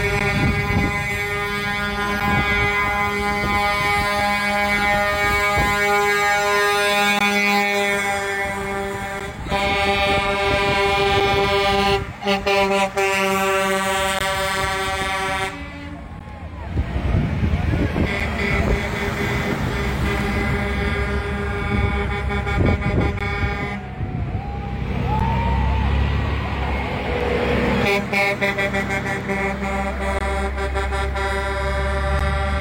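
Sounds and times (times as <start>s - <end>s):
truck horns blaring in a convoy: 0.0s - 32.5s
faint voices: 23.6s - 27.6s.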